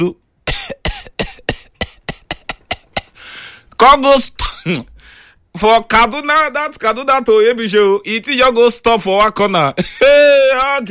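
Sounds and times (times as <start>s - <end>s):
speech: 0.0s - 0.2s, 3.8s - 4.9s, 5.5s - 10.8s
voice imitating a sputtering car engine with breathy bursts: 1.6s - 3.2s.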